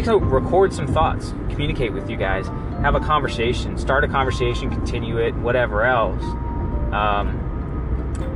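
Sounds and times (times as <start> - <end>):
speech: 0.0 - 7.4
car interior road rumble during a commute: 0.0 - 8.3.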